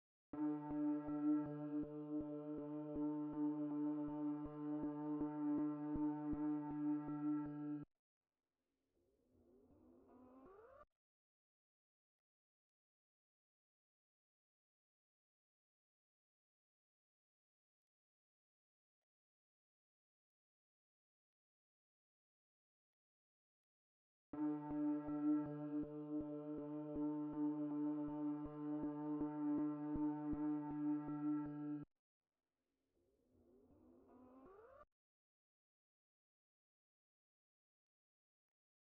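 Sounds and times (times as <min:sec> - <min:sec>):
RnB drone synth at 160 BPM in G minor: 0:00.4 - 0:07.8, 0:24.4 - 0:31.8.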